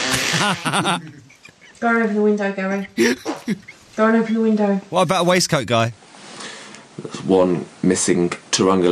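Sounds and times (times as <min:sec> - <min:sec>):
man clearing his throat: 0:00.1 - 0:01.3, 0:02.9 - 0:03.7
man's louder, longer rasping vocal noise: 0:00.1 - 0:01.8, 0:02.8 - 0:04.0
laughter: 0:00.1 - 0:01.9, 0:02.8 - 0:05.9
speech: 0:00.4 - 0:01.2, 0:01.8 - 0:06.0, 0:07.0 - 0:08.8.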